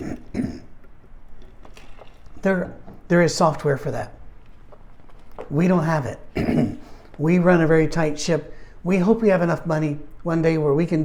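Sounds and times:
person clearing throat: 0:00.0 - 0:00.9, 0:06.3 - 0:07.0
low room noise: 0:00.0 - 0:11.0
speech: 0:02.4 - 0:04.2, 0:05.5 - 0:11.0.

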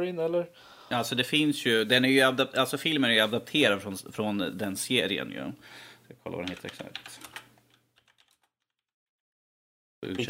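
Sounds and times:
speech: 0:00.0 - 0:07.3, 0:10.0 - 0:10.2
typing on a computer keyboard: 0:06.4 - 0:08.8.

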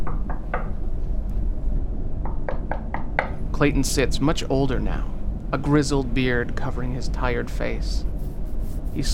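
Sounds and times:
firm knocks on a door: 0:00.0 - 0:00.8, 0:02.2 - 0:03.4
steady low rumble of room noise: 0:00.0 - 0:09.1
speech: 0:03.6 - 0:08.1, 0:09.0 - 0:09.1.

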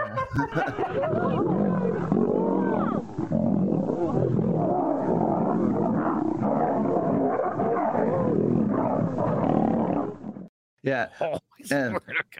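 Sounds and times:
laughter: 0:00.0 - 0:02.0, 0:11.2 - 0:12.3
speech: 0:00.4 - 0:02.3, 0:10.8 - 0:12.3
two lions roaring and snarling while fighting or playing: 0:00.8 - 0:10.5.

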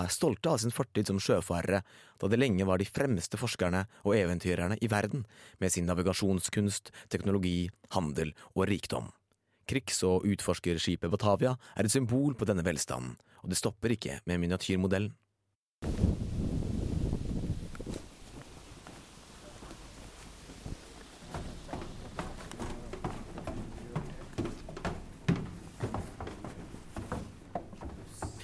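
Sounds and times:
speech: 0:00.0 - 0:15.2
steady wash of rain outdoors in the Netherlands: 0:15.8 - 0:21.3
heavy low rumble of wind buffeting outdoors in the Netherlands: 0:15.8 - 0:28.4
irregular taps and patters of rain: 0:17.5 - 0:24.4.

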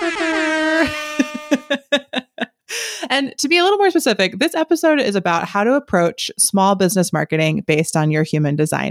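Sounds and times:
air horn long blast and short honks: 0:00.0 - 0:02.0
laughter: 0:00.0 - 0:03.1
speech: 0:03.1 - 0:08.8.

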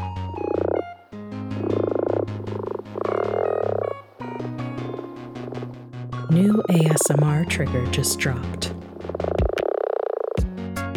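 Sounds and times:
common frog low vibrating croaks: 0:00.0 - 0:10.5
speech: 0:06.3 - 0:08.8.

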